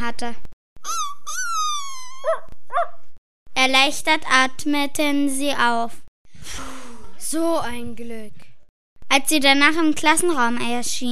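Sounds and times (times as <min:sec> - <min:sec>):
speech: 0:00.0 - 0:01.0, 0:03.6 - 0:08.4, 0:09.1 - 0:11.1
dog whimpering: 0:00.8 - 0:02.9.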